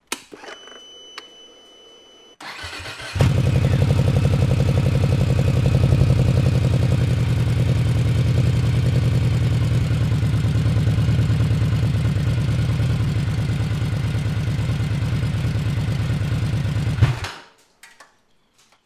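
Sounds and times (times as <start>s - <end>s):
new VMAX motorcycle engine starting with exhaust sound: 2.4s - 17.4s.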